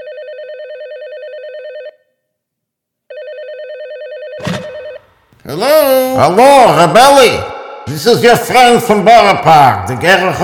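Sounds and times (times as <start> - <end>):
telephone ringing: 0.0 - 2.0, 3.1 - 5.3
speech: 5.5 - 10.4.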